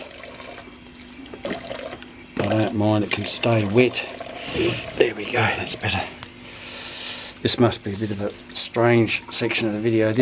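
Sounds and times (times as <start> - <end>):
water splashing: 0.0 - 6.1
running water rinsing a shirt: 0.0 - 10.2
speech: 2.5 - 6.2, 7.4 - 10.2.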